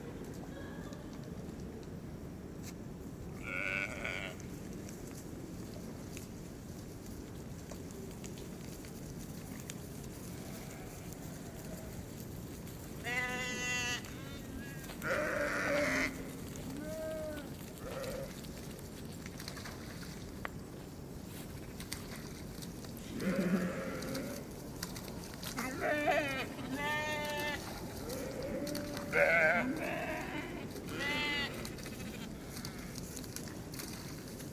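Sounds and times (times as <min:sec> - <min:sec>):
steady outdoor rumble: 0:00.0 - 0:34.5
several sheep bleating: 0:03.4 - 0:04.4, 0:13.0 - 0:16.2, 0:23.2 - 0:24.4, 0:25.6 - 0:32.3.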